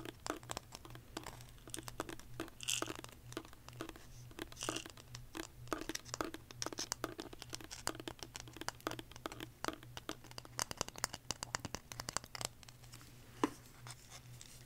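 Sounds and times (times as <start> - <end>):
quick tapping: 0.0 - 12.4
crinkling: 0.0 - 14.6
steady low hum: 0.0 - 14.6.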